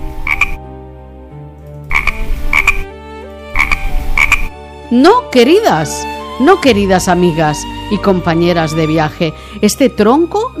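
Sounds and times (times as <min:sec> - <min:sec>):
frogs croaking: 0:00.0 - 0:00.6, 0:01.9 - 0:02.9, 0:03.6 - 0:04.6
low steady music: 0:00.0 - 0:10.5
speech: 0:04.9 - 0:10.5.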